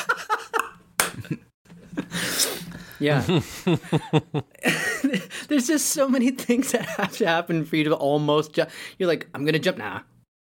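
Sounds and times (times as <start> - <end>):
soft giggling and breathy laughter: 0.0 - 5.4
quick clapping snapping hits: 1.0 - 1.3
sharp smack: 1.0 - 1.4
speech: 3.0 - 10.1.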